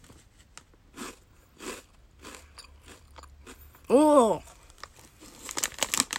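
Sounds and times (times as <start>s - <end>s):
biting and crunching an edamame rice cracker snack: 0.9s - 3.6s, 4.4s - 6.1s
speech: 3.9s - 4.5s.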